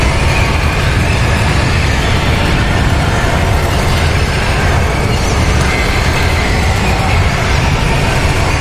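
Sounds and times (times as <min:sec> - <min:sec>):
ravenous flock of birds: 0:00.0 - 0:08.6.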